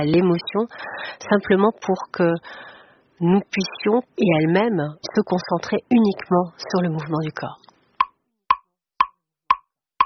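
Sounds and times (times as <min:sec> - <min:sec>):
speech: 0:00.0 - 0:07.7
metronome ticking for a dance composition: 0:08.0 - 0:10.0.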